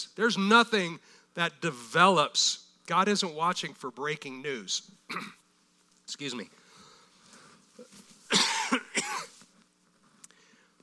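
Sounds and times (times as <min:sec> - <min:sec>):
speech: 0:00.0 - 0:05.4, 0:06.1 - 0:06.6
dry cough from a dry throat: 0:05.1 - 0:05.4, 0:08.3 - 0:09.3.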